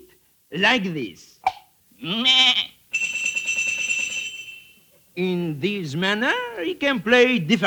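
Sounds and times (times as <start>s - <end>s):
speech: 0.5s - 1.4s, 2.0s - 2.8s, 5.2s - 7.6s
sheep bleating: 2.0s - 2.8s
tuned sheep bell ringing: 2.9s - 4.9s.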